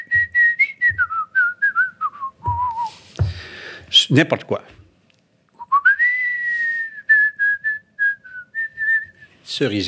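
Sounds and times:
person whistling a lilting tune: 0.0 - 3.0, 5.6 - 9.3
speech: 4.1 - 4.8, 9.6 - 9.8.

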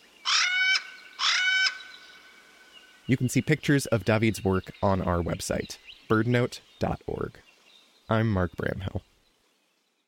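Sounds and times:
Hawaiian Crow nasal calls: 0.2 - 2.2
speech: 3.1 - 7.5, 8.1 - 9.1.

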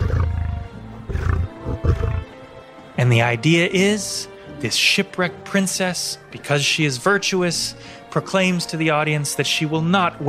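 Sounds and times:
male lion roaring in a large cage: 0.0 - 2.4
speech: 3.0 - 10.2.

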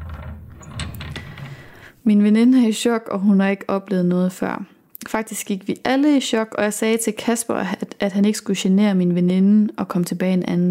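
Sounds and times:
click and rattle of a kitchen door handle pressed down slowly: 0.0 - 1.7
kitchen door creaking open: 0.0 - 1.9
speech: 2.0 - 10.7.

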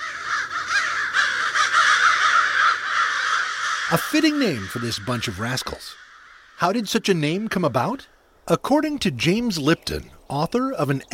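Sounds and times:
crows cawing: 0.0 - 8.3
speech: 3.9 - 6.0, 6.6 - 11.1.

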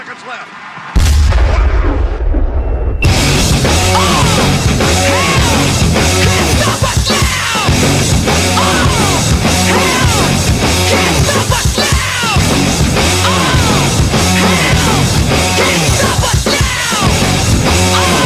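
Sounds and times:
huge stadium crowd roaring and yelling in celebration: 0.0 - 18.2
speech: 0.2 - 0.7
stadium cannon boom: 1.0 - 5.1.

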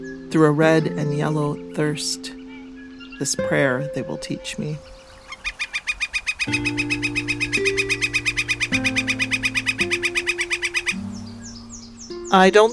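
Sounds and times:
speech: 0.0 - 2.4, 3.2 - 5.0, 6.4 - 7.2, 12.3 - 12.7
sustained low musical tones: 0.0 - 5.4, 6.5 - 12.7
woodpecker-like bird giving sharp high calls: 2.3 - 3.4, 4.8 - 12.7.

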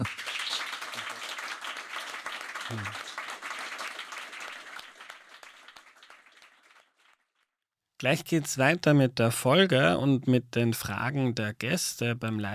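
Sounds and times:
live crowd applauding: 0.0 - 7.4
speech: 2.7 - 3.0, 8.0 - 12.5.

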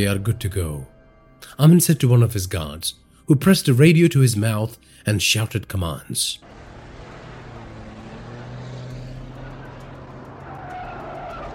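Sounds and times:
speech: 0.0 - 6.6
cars, SUVs and motorcycles tearing down a highway at night: 6.4 - 11.5
tire noise: 6.4 - 11.5.

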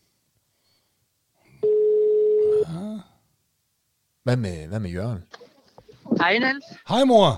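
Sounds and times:
telephone ringback tone: 1.6 - 2.6
speech: 4.2 - 5.5, 6.1 - 7.3
mother's voice answering on the telephone line: 6.1 - 6.8.

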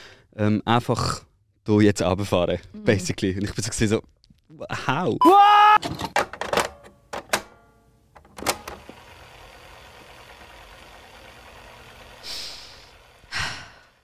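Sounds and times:
speech: 0.3 - 6.1
heavy breaths before setting off down a large ski jump: 13.3 - 14.0.

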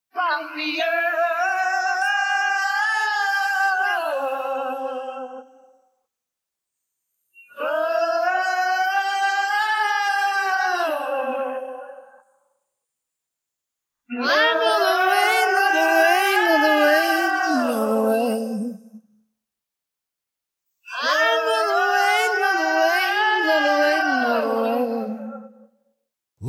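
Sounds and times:
haunting wordless rock vocal refrain with heavy reverb: 0.8 - 5.8, 7.5 - 12.3, 14.1 - 19.0, 20.9 - 25.6.

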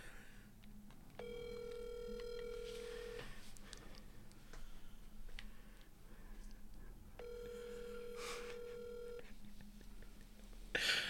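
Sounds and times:
low noisy background: 0.0 - 11.0
ringback tones of an unanswered outgoing phone call: 1.2 - 3.4, 7.2 - 9.3.

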